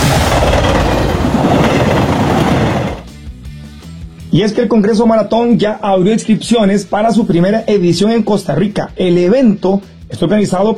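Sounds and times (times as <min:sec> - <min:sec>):
railway cars clattering: 0:00.0 - 0:03.0
train wheels rattling: 0:00.0 - 0:03.0
moving train rumbling: 0:00.0 - 0:03.1
speech: 0:04.4 - 0:10.7.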